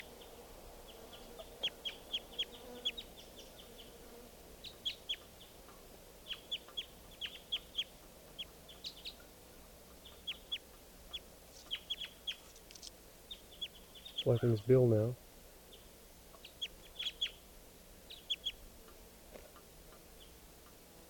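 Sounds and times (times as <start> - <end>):
wild bird chirping: 0.0 - 4.0, 4.6 - 9.3, 10.0 - 12.6, 13.2 - 18.6
speech: 14.3 - 15.2.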